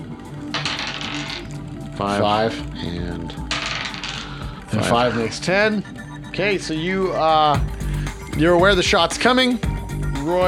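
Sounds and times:
two dice rattling across a hard surface: 0.5s - 5.2s
speech: 2.0s - 3.6s, 4.7s - 9.7s, 10.3s - 10.4s.

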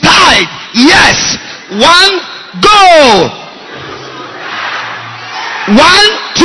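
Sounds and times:
speech: 0.4s - 3.4s, 5.7s - 6.4s
church congregation shouting together: 2.7s - 6.4s.

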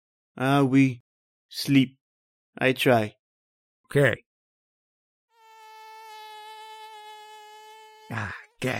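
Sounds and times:
speech: 0.4s - 2.0s, 2.6s - 3.2s, 3.9s - 4.2s, 8.1s - 8.7s
mosquito whining: 5.3s - 8.6s.

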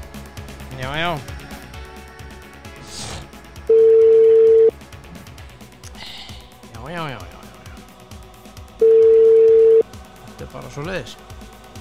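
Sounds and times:
speech: 0.8s - 1.4s, 6.8s - 7.4s, 10.4s - 11.3s
telephone tone while a call is placed: 3.7s - 4.7s, 8.8s - 9.8s.

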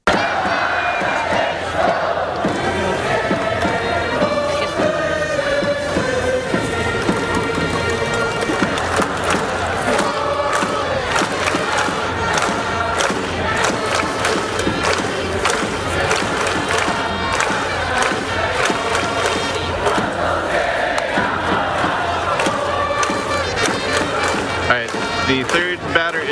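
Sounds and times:
brass backing a stadium cheering song: 0.0s - 26.3s
large stadium crowd chanting a rhythmic cheering song: 0.0s - 26.3s
pounding drums: 0.0s - 26.3s.

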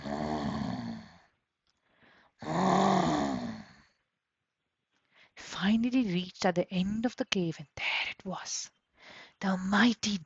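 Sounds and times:
loud deep rumbling snoring: 0.0s - 1.3s, 2.4s - 3.8s
speech: 5.6s - 8.8s, 9.4s - 10.2s.

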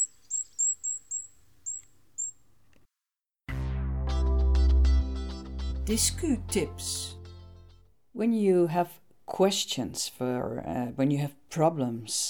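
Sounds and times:
goldcrest calling: 0.0s - 2.5s
instrumental music: 3.5s - 7.9s
speech: 5.9s - 7.2s, 8.2s - 12.2s.

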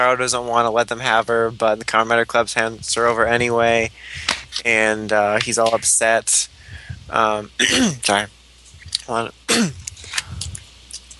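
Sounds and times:
speech: 0.0s - 8.4s, 9.1s - 9.8s
person clearing throat: 7.6s - 8.2s, 9.5s - 9.9s.

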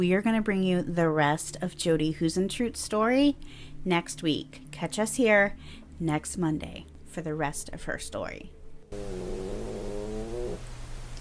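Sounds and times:
speech: 0.0s - 9.6s
low hum: 3.3s - 11.1s
drawn-out stomach growl rising into a pitched whine: 8.9s - 10.7s.

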